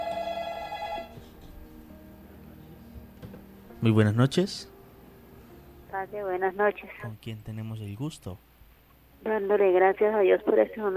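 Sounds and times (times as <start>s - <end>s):
telephone ringing with an incoming call: 0.0s - 1.2s
speech: 3.8s - 4.7s, 6.0s - 8.5s, 9.2s - 10.9s.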